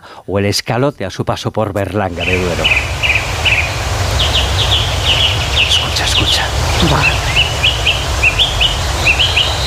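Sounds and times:
speech: 0:00.2 - 0:03.1
riverside dawn chorus of songbirds chirping and trilling: 0:02.1 - 0:09.6.

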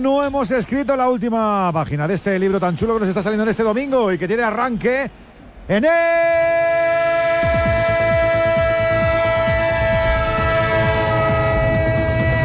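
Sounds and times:
speech: 0:00.0 - 0:07.0
passing train horn: 0:06.4 - 0:12.4.

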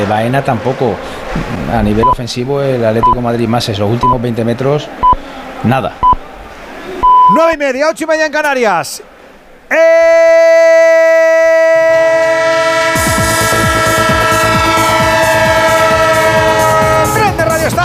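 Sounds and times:
speech: 0:00.0 - 0:06.1, 0:07.3 - 0:09.1, 0:09.7 - 0:10.7
train horn sound effect, multi-tone chord: 0:11.8 - 0:17.7.

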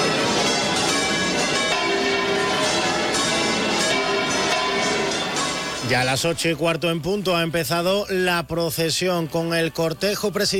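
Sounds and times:
cathedral church bells pealing: 0:00.0 - 0:06.9
speech: 0:05.9 - 0:10.5.

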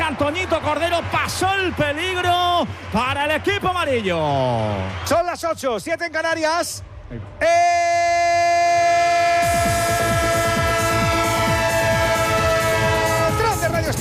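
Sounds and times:
speech: 0:00.1 - 0:08.6
passing train horn blast: 0:09.7 - 0:13.9.

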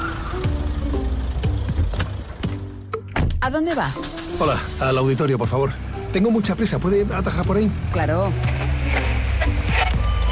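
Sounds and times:
taxi tires squealing: 0:00.0 - 0:00.8, 0:04.0 - 0:10.2
taxi engine rumbling: 0:00.0 - 0:10.2
speech: 0:03.4 - 0:08.5.

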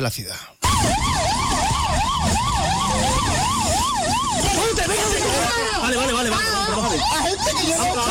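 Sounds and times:
speech: 0:00.0 - 0:01.0
police sirens wailing during chase and arrest: 0:00.6 - 0:08.0
rumbling street commotion during arrest: 0:00.6 - 0:08.0
indistinct shouting voices: 0:03.3 - 0:08.0.

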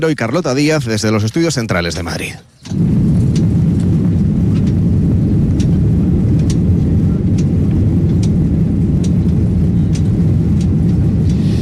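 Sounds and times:
speech: 0:00.0 - 0:03.1
faint clicks and ticks: 0:02.6 - 0:11.6
steady loud low-frequency roar: 0:02.7 - 0:11.6.

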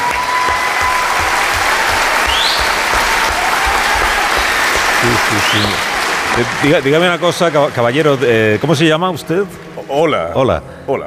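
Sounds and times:
loud sustained applause from a sizable audience: 0:00.0 - 0:09.2
speech: 0:05.2 - 0:11.0
faint whistle: 0:05.3 - 0:05.9.

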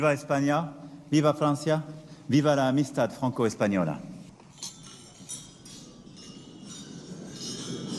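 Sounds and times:
speech: 0:00.0 - 0:04.1
wine glasses clinking during a toast: 0:04.4 - 0:07.9.

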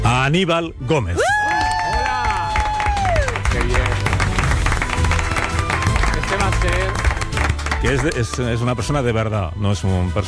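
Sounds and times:
speech: 0:00.2 - 0:01.4, 0:07.8 - 0:10.2
studio audience cheering: 0:01.2 - 0:08.3
studio audience applause: 0:01.2 - 0:08.5.

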